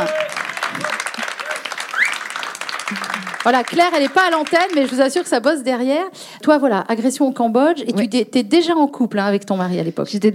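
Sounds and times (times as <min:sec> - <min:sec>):
small crowd applauding: 0:00.0 - 0:05.5
rising whistle: 0:01.9 - 0:02.3
speech: 0:02.9 - 0:10.3.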